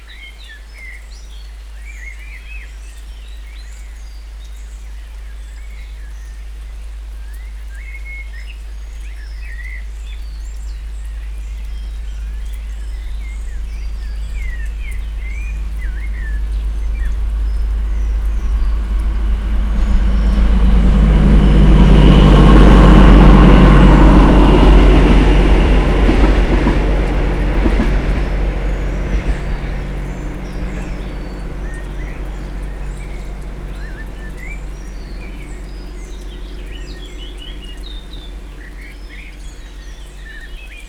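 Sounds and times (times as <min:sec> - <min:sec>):
large train heard from outside: 0:09.4 - 0:40.8.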